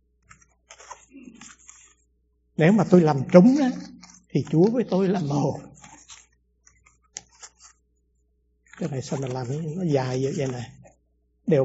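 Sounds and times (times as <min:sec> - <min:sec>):
scissors cutting through paper in a circle: 0:00.2 - 0:02.0, 0:02.7 - 0:07.8, 0:08.7 - 0:10.8
speech: 0:02.6 - 0:05.7, 0:08.8 - 0:10.8.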